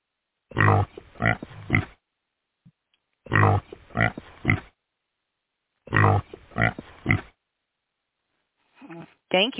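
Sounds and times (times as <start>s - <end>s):
pigs oinking, grunting and snorting: 0.5s - 2.0s, 3.3s - 4.8s, 5.9s - 7.4s.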